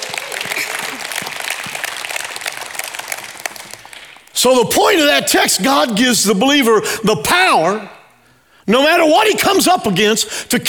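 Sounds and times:
audience clapping: 0.0 - 4.4
speech: 4.4 - 8.0, 8.7 - 10.6.

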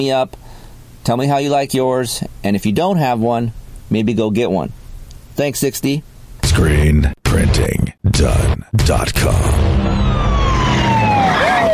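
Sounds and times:
speech: 0.0 - 4.8, 5.4 - 10.0
siren wailing in a commercial: 9.6 - 11.7.

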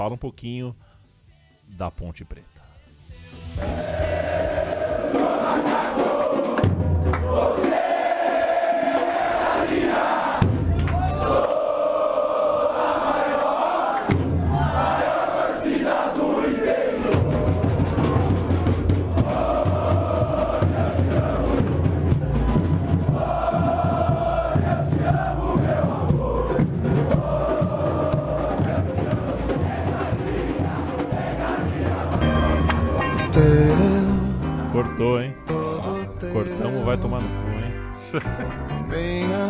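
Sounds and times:
speech: 0.0 - 0.9, 1.7 - 2.6, 3.6 - 4.0, 36.4 - 37.4, 38.1 - 39.4
football supporters singing a stadium chant in unison: 3.0 - 36.9
rough stadium crowd roar: 3.6 - 33.4
laughter: 38.1 - 38.8.

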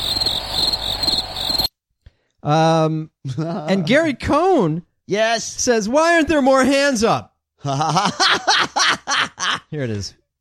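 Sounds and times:
crickets chirping: 0.0 - 1.7
speech: 2.4 - 10.2
laughter: 7.6 - 9.7.

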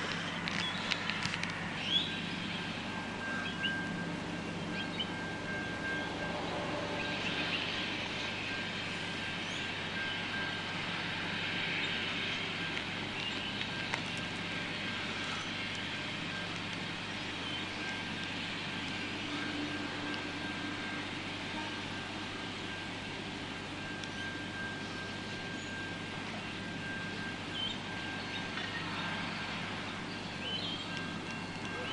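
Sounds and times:
broad outdoor noise: 0.0 - 31.9
distant train rumbling: 0.0 - 31.9
faint sustained train horn: 2.1 - 12.4, 18.9 - 29.8.

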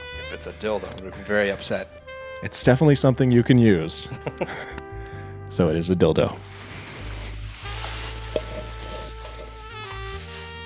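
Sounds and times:
speech: 0.3 - 4.8, 5.5 - 6.5
laughter: 4.1 - 4.8
tissue paper wrapping a gift crinkling and rustling during unwrapping: 6.4 - 10.6.

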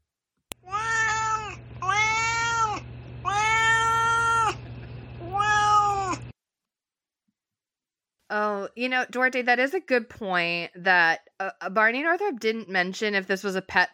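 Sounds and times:
cat meowing: 0.6 - 4.6, 5.2 - 6.3
faint steady hum: 0.6 - 6.3
speech: 8.8 - 13.9.

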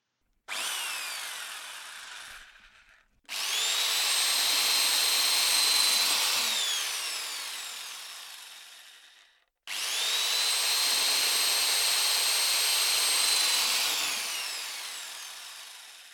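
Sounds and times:
electric drill boring holes into wood: 0.5 - 16.1.

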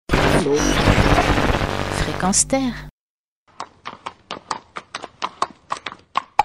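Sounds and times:
speech: 0.4 - 1.2, 2.2 - 2.9
Percheron horse hooves walking on a hard surface: 3.5 - 6.4.

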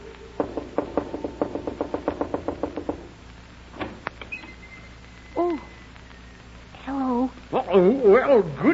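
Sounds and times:
knocking on a wooden door: 0.4 - 3.1
speech: 7.7 - 8.7.

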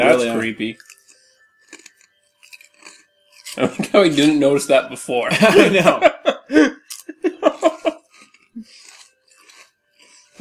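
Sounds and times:
speech: 0.0 - 1.0, 3.6 - 8.0
people munching crunchy skinny snack sticks: 0.1 - 4.2, 6.7 - 10.3
laughter: 5.2 - 8.1.

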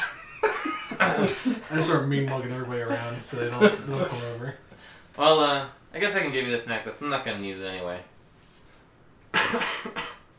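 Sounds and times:
laughter: 0.0 - 2.0, 2.8 - 4.5
speech: 1.0 - 8.1, 9.5 - 10.0
short soft cough: 9.3 - 10.3.

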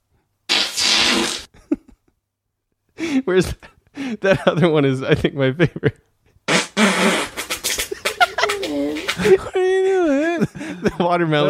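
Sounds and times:
loud raspy fart: 0.5 - 1.6, 6.5 - 9.4
speech: 3.2 - 6.1, 9.2 - 11.4
laughter: 7.5 - 11.4.

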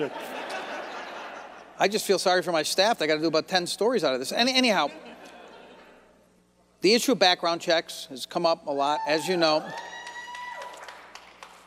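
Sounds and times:
speech: 0.0 - 0.4, 1.8 - 5.1, 6.8 - 9.9
laughter: 0.0 - 2.0, 4.6 - 6.2
scattered faint clapping from a small crowd: 9.6 - 11.6.

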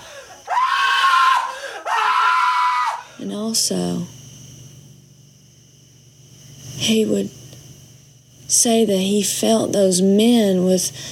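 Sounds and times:
man screaming: 0.4 - 3.0
speech: 3.2 - 4.2, 6.9 - 7.4, 8.6 - 11.0.

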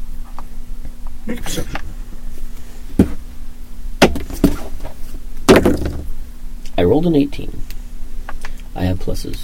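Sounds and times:
low steady hum: 0.0 - 9.4
speech: 1.3 - 1.9, 6.9 - 7.6, 8.8 - 9.4
knocking on a door: 5.5 - 6.1.

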